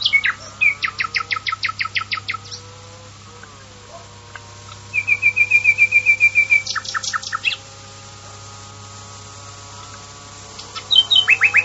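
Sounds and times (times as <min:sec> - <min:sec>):
common nightingale song: 0:00.0 - 0:02.8, 0:03.4 - 0:07.9, 0:09.9 - 0:11.6.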